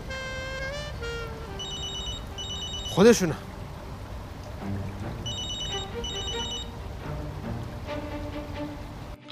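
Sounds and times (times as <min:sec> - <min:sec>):
hiss: 0:00.0 - 0:09.2
telephone ringing with electronic tones: 0:01.6 - 0:03.2, 0:05.2 - 0:06.8
speech: 0:03.0 - 0:03.5.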